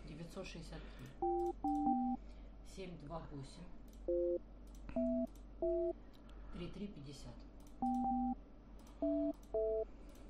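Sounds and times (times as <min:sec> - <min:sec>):
telephone keypad dual-tone dialing beeps: 0:01.2 - 0:02.2, 0:05.0 - 0:05.9, 0:07.8 - 0:08.4, 0:09.0 - 0:09.8.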